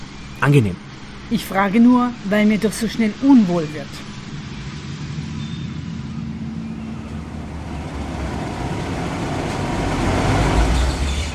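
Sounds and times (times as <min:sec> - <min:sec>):
speech: 0:00.4 - 0:04.1
car engine rumbling while manoeuvring into parking on a passenger ship deck: 0:03.8 - 0:11.3.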